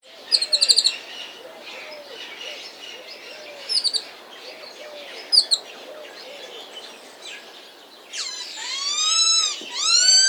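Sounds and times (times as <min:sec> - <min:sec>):
birds chirping in rapid high bursts at a zoo: 0:00.1 - 0:10.2.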